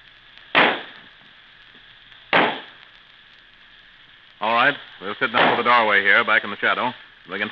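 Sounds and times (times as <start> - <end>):
Roman candle firework sizzling: 0.0 - 7.4
Roman candle firework bangs: 0.4 - 1.4, 2.2 - 2.8, 5.2 - 6.0
speech: 4.4 - 7.4.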